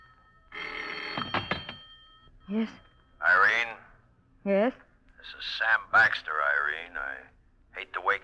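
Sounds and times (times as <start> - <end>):
telephone bell ringing: 0.0 - 3.4
speech: 2.5 - 3.7, 4.4 - 8.2.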